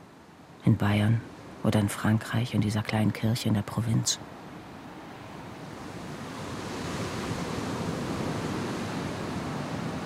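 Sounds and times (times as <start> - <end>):
speech: 0.6 - 4.4
Atlantic ocean waves breaking on shore: 4.3 - 10.0.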